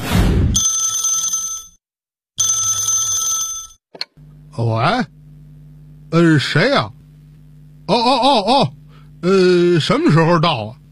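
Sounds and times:
electronic telephone ringing in a home on a residential estate: 0.6s - 1.8s, 2.4s - 3.8s
speech: 4.6s - 5.2s, 6.2s - 7.0s, 7.9s - 10.8s.

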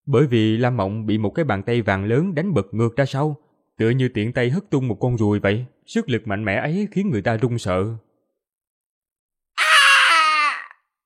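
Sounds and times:
speech: 0.1s - 8.0s
man screaming in pain: 9.6s - 10.8s.

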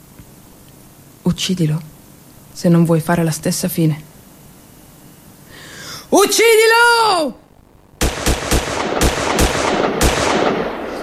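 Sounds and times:
dense continuous roar of noise: 0.0s - 11.0s
speech: 1.4s - 1.9s, 2.6s - 4.1s, 6.3s - 7.4s
gunshots: 8.0s - 11.0s.

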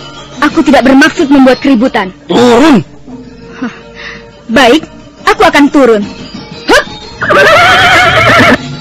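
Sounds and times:
speech: 0.5s - 2.9s, 3.6s - 3.8s, 4.5s - 6.2s, 7.3s - 8.6s
horse neighing: 7.2s - 8.6s.

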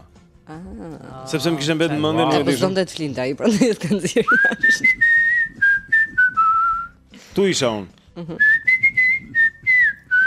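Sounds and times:
speech: 0.5s - 5.1s, 7.4s - 8.6s
person whistling a tune alone: 4.3s - 7.1s, 8.3s - 10.2s.

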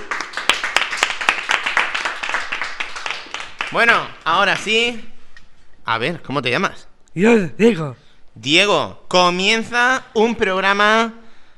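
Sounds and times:
applause after a carnival song: 0.0s - 4.7s
speech: 3.7s - 5.1s, 5.9s - 11.2s.

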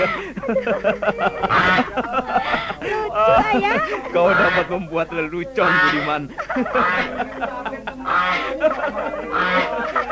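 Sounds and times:
speech: 0.0s - 2.3s, 2.9s - 10.0s
laughter: 0.0s - 10.1s
goose honking: 1.4s - 2.8s, 4.2s - 4.8s, 5.6s - 7.2s, 8.0s - 8.6s, 9.3s - 10.1s.

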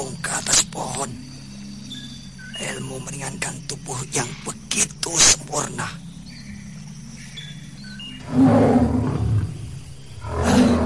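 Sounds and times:
speech: 3.0s - 6.0s
tiger roaring: 8.2s - 10.8s.

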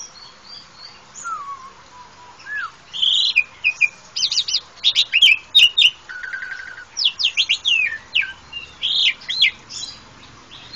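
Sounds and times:
oriental magpie-robin song: 0.0s - 10.7s.

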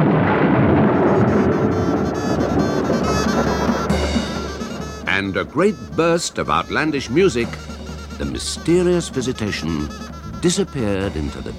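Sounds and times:
clap of thunder in a forest scene: 0.0s - 10.4s
speech: 5.4s - 11.5s.

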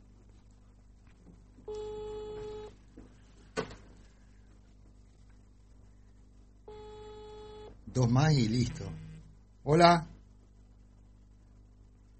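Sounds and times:
ringback tone of an outgoing phone call: 1.7s - 2.7s, 6.7s - 7.7s
speech: 7.9s - 10.1s.

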